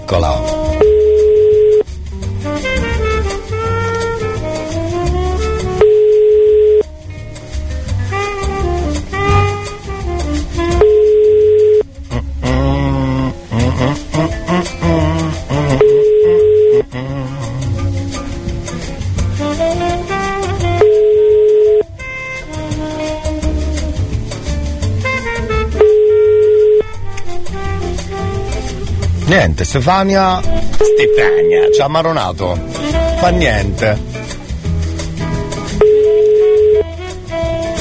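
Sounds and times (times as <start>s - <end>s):
loud continuous music: 0.0s - 37.7s
Italian telephone ringback tone while placing a call: 0.8s - 1.8s, 5.8s - 6.9s, 11.0s - 11.8s, 20.8s - 21.9s, 25.8s - 26.9s
speech: 29.3s - 34.1s.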